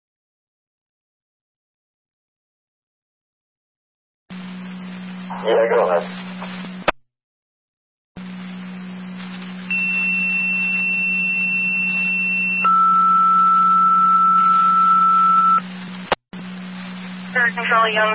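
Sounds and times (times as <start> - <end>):
constant radio hum: 4.3 - 7.0, 8.2 - 18.1
speech: 5.4 - 6.6, 17.6 - 18.1
dispatch paging tones for an EMS call: 9.7 - 15.6.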